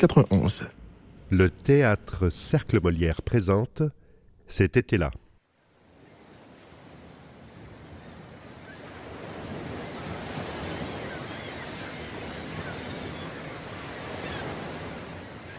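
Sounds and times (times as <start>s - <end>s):
speech: 0.0s - 5.2s
wind: 0.0s - 15.5s
surf breaking onto a beach: 5.6s - 15.5s.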